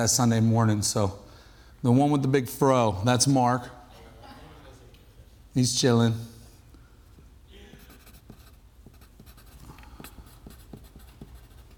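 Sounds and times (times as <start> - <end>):
speech: 0.0 - 1.2, 1.8 - 3.8, 5.6 - 6.3
hiss: 0.0 - 11.7
scratchy writing on a board: 7.2 - 11.7.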